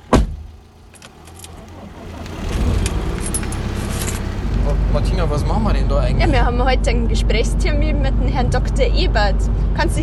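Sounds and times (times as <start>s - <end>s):
car engine low rumble: 0.0s - 10.0s
thud: 0.1s - 0.5s
keys jingling: 0.9s - 1.7s, 2.4s - 4.4s
speech: 5.0s - 10.0s.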